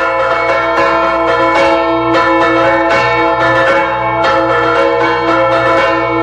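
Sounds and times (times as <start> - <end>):
church bells tolling to ward off storm clouds: 0.0 - 6.2.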